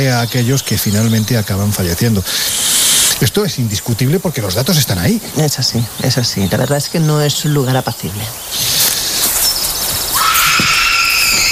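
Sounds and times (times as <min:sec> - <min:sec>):
speech: 0:00.0 - 0:08.8
hissing background: 0:00.0 - 0:11.5
eerie high-pitched scream-like wail: 0:10.2 - 0:11.5.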